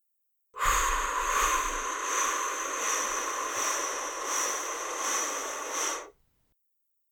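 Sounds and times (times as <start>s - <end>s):
long steady breath blown out through the mouth: 0.6s - 6.1s.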